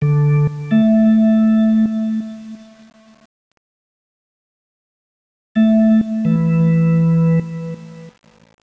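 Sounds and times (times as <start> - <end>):
rich B3 organ: 0.0 - 2.9, 5.6 - 8.2.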